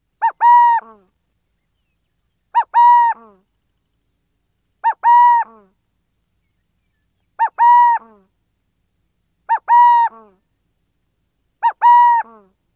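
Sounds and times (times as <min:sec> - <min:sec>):
coo-coooo calls: 0:00.2 - 0:01.2, 0:02.5 - 0:03.5, 0:04.8 - 0:05.8, 0:07.3 - 0:08.3, 0:09.5 - 0:10.5, 0:11.6 - 0:12.6.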